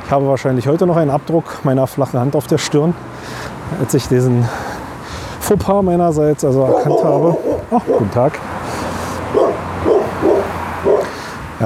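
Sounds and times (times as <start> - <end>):
speech: 0.1 - 4.8, 5.5 - 8.4
dog barking: 6.6 - 8.2, 9.3 - 11.2.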